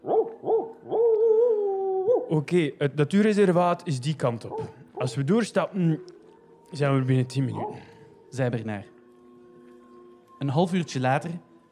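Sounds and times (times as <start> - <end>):
dog barking: 0.0 - 2.3, 4.4 - 5.3, 7.4 - 8.3
dog howling: 0.0 - 2.3, 7.3 - 8.3
speech: 2.3 - 8.9, 10.4 - 11.5.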